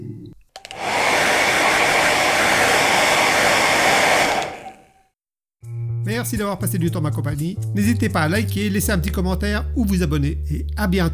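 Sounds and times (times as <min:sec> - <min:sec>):
hair dryer blowing: 0:00.6 - 0:05.0
speech: 0:06.0 - 0:11.1.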